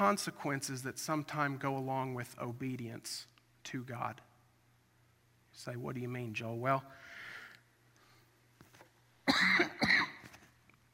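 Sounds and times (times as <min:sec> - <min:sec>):
speech: 0:00.0 - 0:04.3, 0:05.6 - 0:07.2
nasty cough from a person with a lingering illness: 0:09.3 - 0:10.2.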